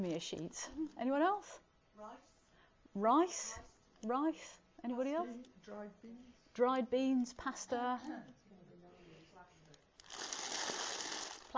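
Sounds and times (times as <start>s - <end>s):
speech: 0.0s - 2.3s, 2.9s - 8.4s
slightly squashed cornflakes being handled: 10.0s - 11.5s.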